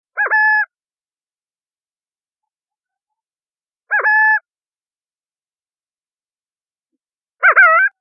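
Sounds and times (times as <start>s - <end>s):
burrowing owl: 0.1s - 0.7s, 3.9s - 4.5s, 7.4s - 7.9s.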